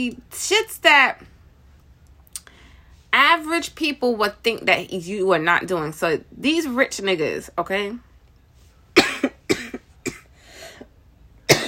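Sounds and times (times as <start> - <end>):
speech: 0.0 - 1.3, 3.2 - 8.1
person coughing hard with something caught in the throat: 9.0 - 10.3, 11.5 - 11.6.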